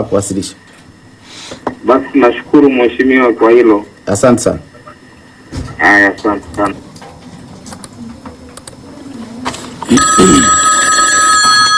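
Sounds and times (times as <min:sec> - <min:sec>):
speech: 0:00.0 - 0:04.7, 0:05.6 - 0:06.8, 0:09.9 - 0:10.7
telephone ringing with an incoming call: 0:09.8 - 0:11.7.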